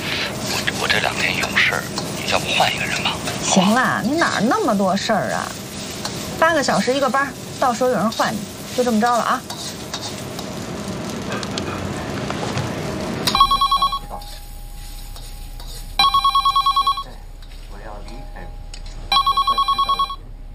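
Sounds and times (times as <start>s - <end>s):
noisy rumbling background: 0.0s - 20.5s
speech: 1.2s - 5.6s, 6.4s - 9.5s
telephone ringing with rapid electronic trills: 19.1s - 20.2s.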